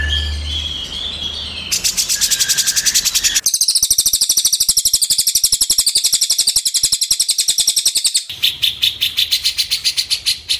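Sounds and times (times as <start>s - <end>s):
bird song trill and chirps: 0.0s - 10.5s.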